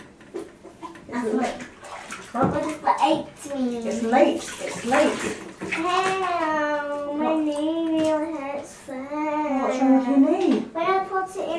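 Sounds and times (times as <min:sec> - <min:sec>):
bathtub water sloshing and splashing as a child is bathed: 0:00.0 - 0:11.5
speech: 0:01.2 - 0:01.7, 0:02.3 - 0:08.4
child's voice: 0:02.4 - 0:04.0, 0:05.8 - 0:10.0, 0:10.7 - 0:11.5.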